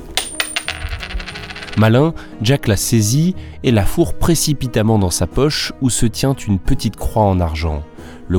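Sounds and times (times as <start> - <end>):
coin dropping onto a hard counter: 0.1 - 1.8
speech: 1.8 - 8.3.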